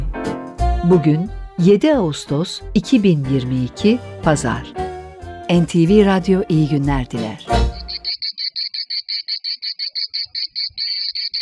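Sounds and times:
speech: 0:00.8 - 0:04.8, 0:05.5 - 0:07.6
male cicada song: 0:07.6 - 0:11.4.

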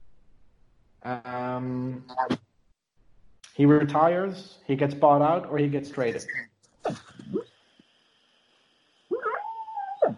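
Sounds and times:
speech: 0:01.0 - 0:02.4, 0:03.6 - 0:07.5
sleeping dog whimpering while dreaming: 0:09.2 - 0:10.1.

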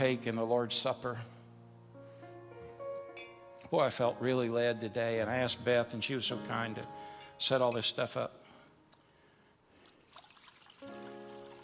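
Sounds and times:
speech: 0:00.0 - 0:01.4, 0:03.7 - 0:08.4
water poured into a basin for ceremonial hand washing: 0:09.8 - 0:11.6.

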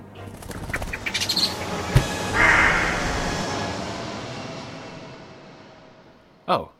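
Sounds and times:
steady rushing noise: 0:00.0 - 0:06.5
bird giving short harsh calls: 0:00.5 - 0:03.5
speech: 0:06.5 - 0:06.7.

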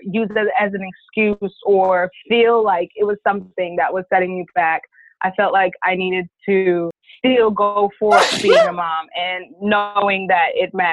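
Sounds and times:
speech: 0:00.1 - 0:10.9
sneeze: 0:08.1 - 0:08.7.

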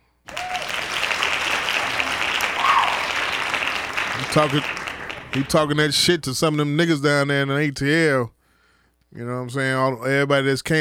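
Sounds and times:
applause of many hands clapping: 0:00.2 - 0:06.1
speech: 0:04.3 - 0:08.4, 0:09.1 - 0:10.7.

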